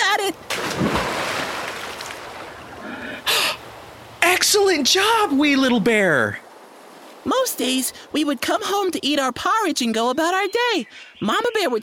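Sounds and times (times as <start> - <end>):
speech: 0.3 - 1.0, 4.5 - 6.4, 7.2 - 11.8
brief bright river water splash: 0.4 - 2.8
river water rushing and washing: 0.4 - 7.8.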